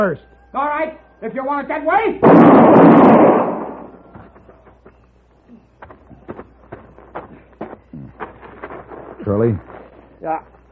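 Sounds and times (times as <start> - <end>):
speech: 0.0 - 3.4, 9.3 - 10.6
single loud gunshot during a Western showdown: 2.2 - 4.0.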